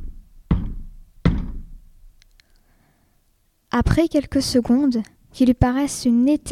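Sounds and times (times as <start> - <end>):
girl knocking timidly on the wooden door of a moated castle: 0.5 - 1.7
speech: 3.8 - 6.4.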